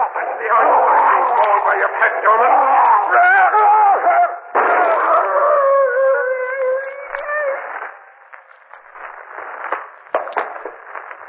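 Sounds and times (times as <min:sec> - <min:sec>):
speech: 0:00.2 - 0:00.8, 0:01.5 - 0:04.4
wolf howling: 0:03.0 - 0:07.8.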